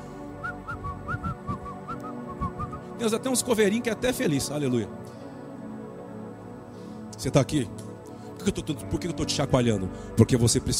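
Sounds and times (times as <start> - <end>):
person whistling a short lilting tune: 0.4 - 2.9
speech: 3.0 - 5.1, 7.2 - 10.7.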